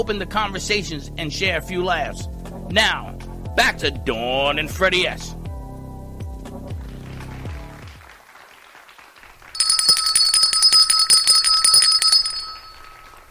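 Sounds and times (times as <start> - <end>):
speech: 0.0 - 5.4
deep bell-like tones: 9.6 - 13.2.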